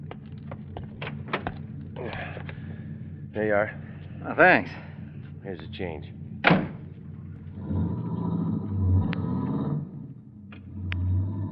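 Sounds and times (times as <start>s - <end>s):
steady low car engine hum: 0.0s - 11.5s
speech: 3.4s - 6.6s
car door thumping as a hitchhiker climbs in: 6.4s - 6.8s.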